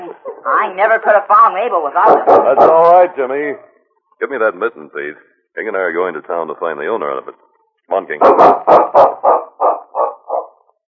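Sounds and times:
speech: 0:00.2 - 0:09.1
big dog barking: 0:02.0 - 0:03.1, 0:08.2 - 0:10.6.

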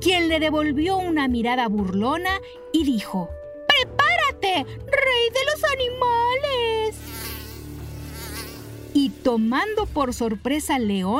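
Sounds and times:
speech: 0:00.0 - 0:07.0, 0:09.0 - 0:11.1
mosquito buzzing in flight: 0:06.0 - 0:09.8.

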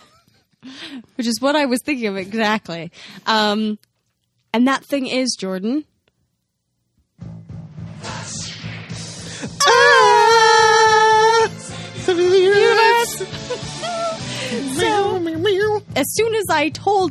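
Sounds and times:
speech: 0:00.6 - 0:03.9, 0:04.5 - 0:05.9, 0:12.2 - 0:17.0
voices scream-singing a film theme song: 0:09.6 - 0:13.2.

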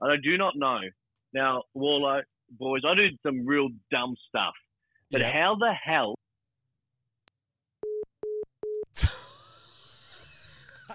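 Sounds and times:
speech: 0:00.0 - 0:06.2
phone line busy tone after the caller hung up: 0:07.8 - 0:08.8.

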